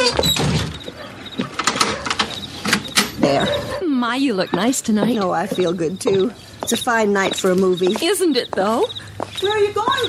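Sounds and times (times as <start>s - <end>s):
door shutting: 0.0s - 3.4s
speech: 4.1s - 10.0s.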